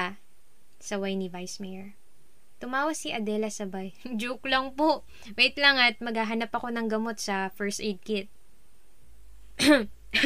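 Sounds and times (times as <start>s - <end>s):
speech: 0.8s - 2.0s, 2.6s - 8.4s, 9.6s - 10.2s
person clearing throat: 9.6s - 10.2s
person coughing: 9.6s - 10.2s.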